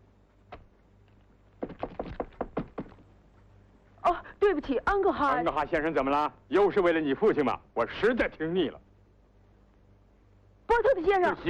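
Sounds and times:
firm knocking on a door: 0:01.6 - 0:03.0
speech: 0:04.4 - 0:08.8, 0:10.8 - 0:11.4.

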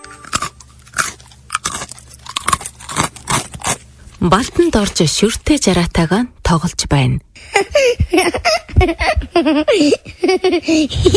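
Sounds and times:
crunchy chewing of dried clotted cream: 0:00.0 - 0:05.0
speech: 0:04.2 - 0:11.1.

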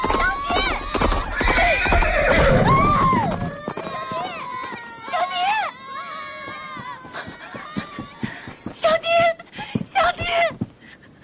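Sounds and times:
horses neighing as riders mount: 0:00.0 - 0:04.3
horse hooves clip-clopping: 0:00.0 - 0:11.2.

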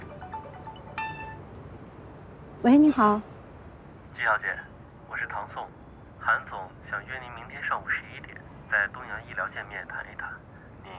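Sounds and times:
phone electronic ringtone of bright chiming tones: 0:00.0 - 0:01.5
speech: 0:02.6 - 0:03.3, 0:04.2 - 0:04.7, 0:05.3 - 0:10.9.

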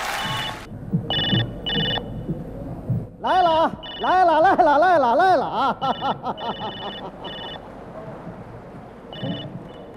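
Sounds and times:
telephone at a repair station ringing in electronic bursts: 0:00.2 - 0:02.0, 0:03.8 - 0:04.1, 0:05.9 - 0:07.6, 0:09.1 - 0:09.5
speech: 0:04.0 - 0:07.3
laughter: 0:04.1 - 0:07.7.

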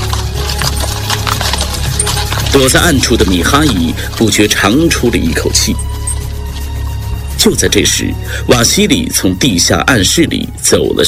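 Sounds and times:
horse hooves clip-clopping from a horse-drawn carriage: 0:00.0 - 0:07.8
speech: 0:02.5 - 0:06.0, 0:07.4 - 0:11.0.

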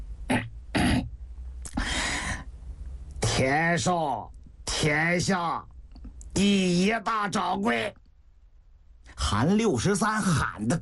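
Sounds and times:
man clearing his throat: 0:00.3 - 0:01.1
speech: 0:03.4 - 0:05.7, 0:06.4 - 0:08.0, 0:09.2 - 0:10.7.

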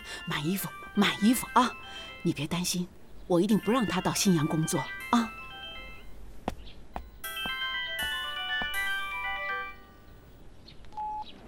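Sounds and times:
phone ringtone of bright electronic notes: 0:00.0 - 0:02.4, 0:03.5 - 0:06.2, 0:07.2 - 0:10.3
speech: 0:00.2 - 0:05.4.

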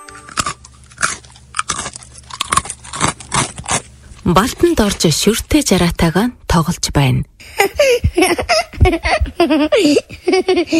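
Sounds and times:
mouse chewing dried cream: 0:00.3 - 0:04.9
speech: 0:04.3 - 0:10.7
laughter: 0:07.4 - 0:10.7.

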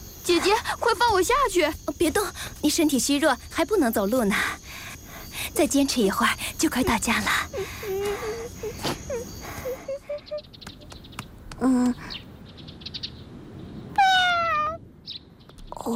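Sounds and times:
chirps: 0:00.0 - 0:14.1
speech: 0:00.4 - 0:04.6, 0:05.5 - 0:09.4, 0:11.6 - 0:12.2
hungry cat meowing: 0:14.0 - 0:14.8.

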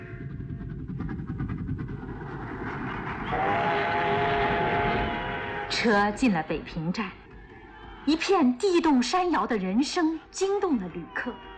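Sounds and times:
steam train rolling along rails: 0:00.0 - 0:06.3
steam train whistle-like tone: 0:03.3 - 0:05.9
speech: 0:05.8 - 0:07.2, 0:08.0 - 0:11.5.

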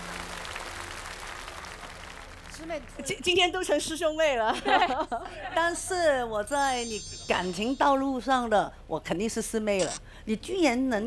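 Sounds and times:
crowd clapping: 0:00.0 - 0:03.4
speech: 0:02.6 - 0:11.0
laughter: 0:04.5 - 0:05.5.

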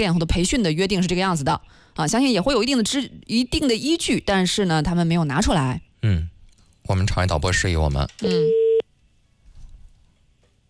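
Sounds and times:
speech: 0:00.0 - 0:06.3, 0:06.9 - 0:08.6
telephone ringback tone from an outgoing call: 0:08.2 - 0:08.8.

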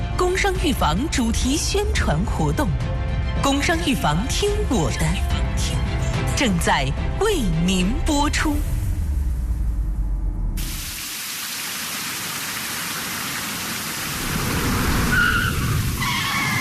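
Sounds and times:
speech: 0:00.4 - 0:05.8, 0:06.4 - 0:08.7
low rumble: 0:06.9 - 0:10.8
steady heavy rain: 0:10.6 - 0:16.6
braking squealing skid on slippery wet road: 0:14.5 - 0:16.6.

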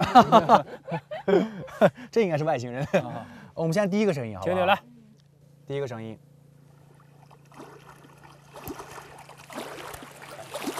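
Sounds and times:
laughter: 0:00.0 - 0:02.0, 0:02.8 - 0:03.4
steady low hum: 0:00.0 - 0:10.7
speech: 0:00.2 - 0:05.0, 0:05.7 - 0:06.3
lake waves lapping: 0:06.6 - 0:10.7.

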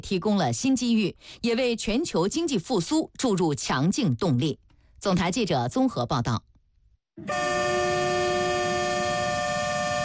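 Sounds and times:
speech: 0:00.0 - 0:06.5, 0:07.2 - 0:07.6
freight train horn blast: 0:07.2 - 0:10.0.

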